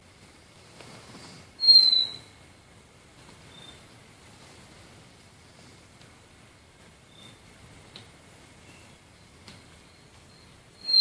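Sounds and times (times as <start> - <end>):
faint steady lower hum: 0.0 - 10.9
hooded antpitta Grallaricula cucullata high-pitched whistle: 1.6 - 2.3, 10.0 - 10.9.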